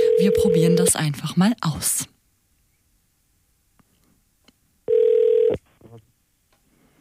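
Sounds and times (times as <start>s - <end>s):
telephone ring tone of a call placed live on a radio show: 0.0s - 0.8s, 4.9s - 5.6s
speech: 0.2s - 2.2s.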